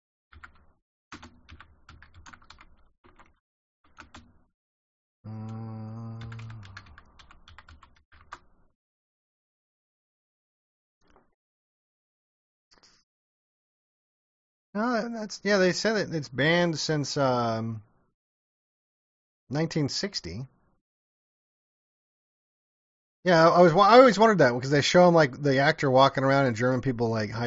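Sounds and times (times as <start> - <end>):
slow typing on a computer keyboard: 0.3 - 4.4, 6.2 - 8.5
speech: 14.8 - 17.9, 19.5 - 20.6, 23.2 - 27.4.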